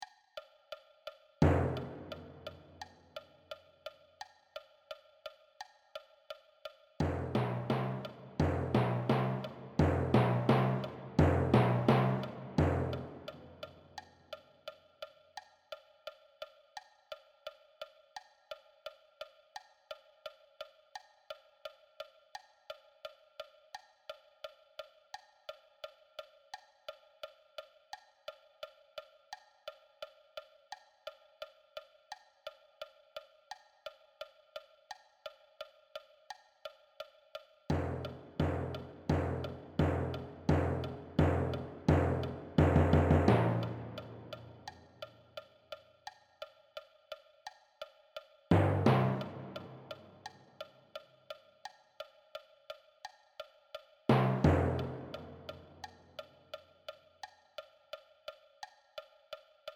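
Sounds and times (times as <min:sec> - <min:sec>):
timpani: 0:01.4 - 0:02.7, 0:07.0 - 0:13.7, 0:37.7 - 0:44.8, 0:48.5 - 0:50.3, 0:54.1 - 0:55.9.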